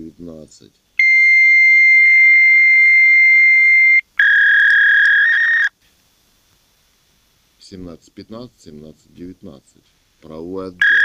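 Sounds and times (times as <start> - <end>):
speech: 0.2 - 0.9, 7.7 - 11.0
electronic telephone tone signalling to send a fax: 1.0 - 5.7, 10.8 - 11.0.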